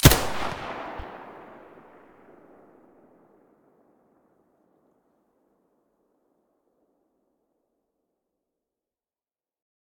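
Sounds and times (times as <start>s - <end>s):
MP9 submachine gun muzzle shot: 0.0s - 2.6s.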